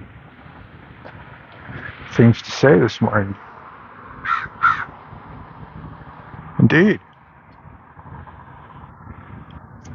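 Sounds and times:
speech: 2.2s - 3.5s, 6.7s - 7.1s
crow cawing in the morning: 4.2s - 5.0s.

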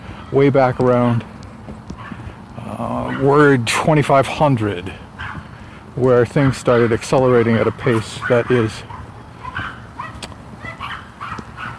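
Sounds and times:
speech: 0.3s - 1.3s, 2.7s - 5.0s, 6.0s - 8.9s
dog barking: 2.0s - 2.3s, 3.0s - 3.5s, 5.2s - 5.4s, 7.7s - 11.7s.

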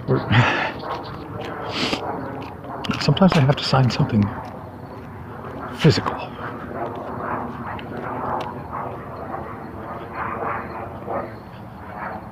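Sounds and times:
big jet airliner flying: 0.0s - 12.3s
speech: 0.1s - 0.6s, 3.0s - 4.5s, 5.8s - 6.3s.

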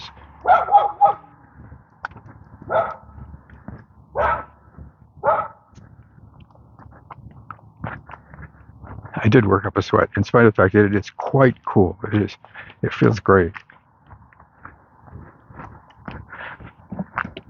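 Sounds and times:
dog barking outdoors: 0.4s - 1.3s, 2.6s - 3.2s, 4.1s - 4.6s, 5.2s - 5.7s
speech: 9.3s - 13.6s.

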